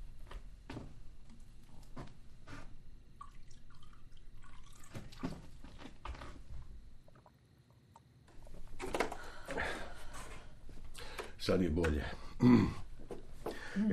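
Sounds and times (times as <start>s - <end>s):
water poured into a cup or glass for drinking: 3.2s - 5.8s
speech: 11.4s - 12.8s, 13.8s - 13.9s.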